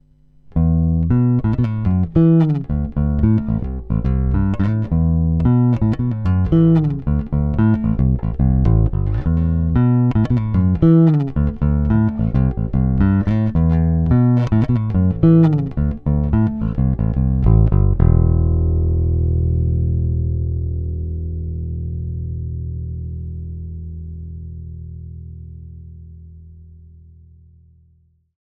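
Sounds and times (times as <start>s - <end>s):
open string plucked with fingers: 0.5s - 25.8s.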